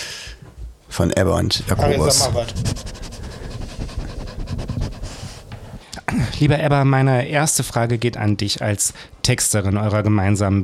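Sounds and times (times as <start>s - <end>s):
speech: 1.0s - 2.9s, 6.2s - 10.6s
dog panting: 2.4s - 5.6s.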